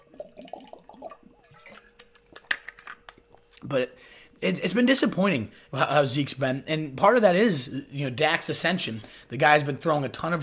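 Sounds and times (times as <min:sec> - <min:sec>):
person taking a quick swig of water: 0:00.0 - 0:02.5
speech: 0:03.6 - 0:10.4.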